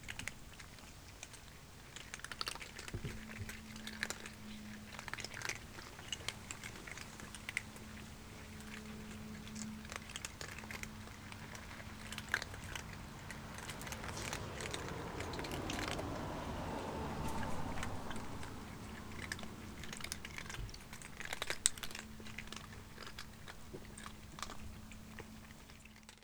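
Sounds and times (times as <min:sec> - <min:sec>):
domestic cat chewing and crunching food at feeding time: 0:00.0 - 0:26.2.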